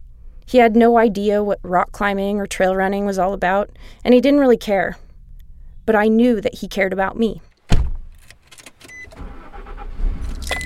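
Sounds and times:
speech: 0:00.5 - 0:05.0, 0:05.9 - 0:07.5
steady low road rumble: 0:07.9 - 0:10.6
car engine humming and revving: 0:09.0 - 0:10.6.

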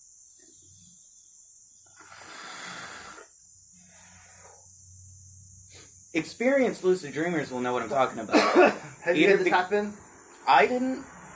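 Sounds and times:
person inhaling a hit of weed: 0:01.9 - 0:04.7, 0:05.6 - 0:06.0
speech: 0:06.1 - 0:11.1.

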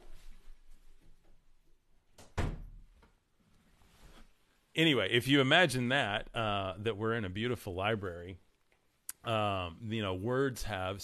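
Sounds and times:
door being pushed shut: 0:02.2 - 0:02.9
speech: 0:04.8 - 0:08.4, 0:09.2 - 0:11.0.

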